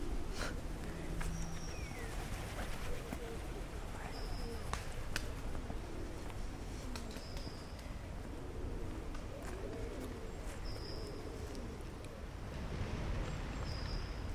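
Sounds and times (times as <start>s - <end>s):
pigeons cooing softly: 0.0s - 12.4s
steady busy outdoor noise: 0.0s - 14.3s.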